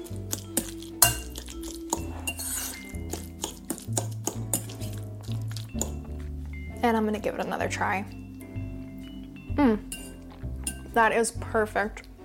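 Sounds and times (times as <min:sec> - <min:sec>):
spoon clinking against a bowl while mixing avocado and canned tuna: 0:00.0 - 0:06.7, 0:08.4 - 0:11.0
music: 0:00.0 - 0:12.2
speech: 0:06.8 - 0:08.2, 0:11.0 - 0:12.1.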